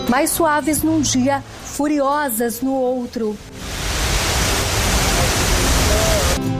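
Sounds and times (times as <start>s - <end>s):
speech: 0.1s - 3.7s
waterfall roaring: 3.4s - 6.4s.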